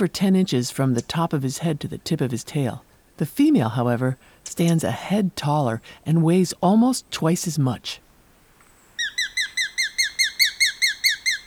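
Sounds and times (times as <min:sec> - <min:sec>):
speech: 0:00.0 - 0:08.0
small gray and rufous hawk calling shrill notes: 0:09.0 - 0:11.4.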